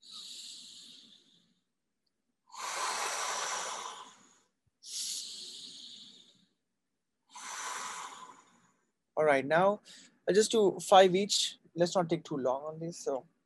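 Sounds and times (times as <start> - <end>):
slow hissing breaths imitating sea waves on a beach: 0.0 - 1.4, 2.5 - 6.3, 7.3 - 8.6
speech: 9.2 - 13.3.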